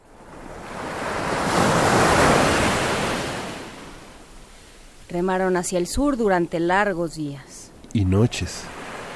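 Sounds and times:
light wind over the water: 0:00.0 - 0:09.1
sea waves: 0:00.0 - 0:09.1
speech: 0:05.1 - 0:08.8.

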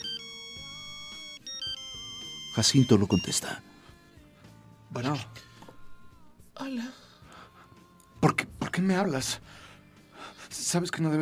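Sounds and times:
mobile phone ringtone playing a synthetic melody: 0:00.0 - 0:03.6
speech: 0:02.6 - 0:03.7, 0:04.9 - 0:05.5, 0:06.6 - 0:07.0, 0:08.2 - 0:09.6, 0:10.5 - 0:11.2.

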